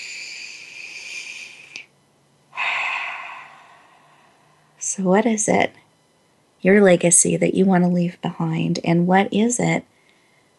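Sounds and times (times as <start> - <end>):
person breathing during a guided breathing exercise: 0.0 - 1.8, 2.5 - 4.8
speech: 5.0 - 5.8, 6.6 - 9.9.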